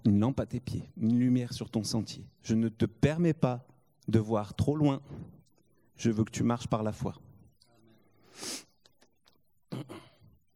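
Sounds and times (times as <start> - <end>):
speech: 0.1 - 5.4, 6.0 - 7.3
loud nasal sniff: 8.2 - 8.8.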